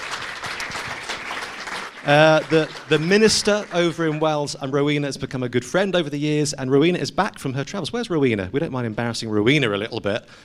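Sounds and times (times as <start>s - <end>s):
audience applause at a church gathering: 0.0s - 4.5s
speech: 2.0s - 10.4s.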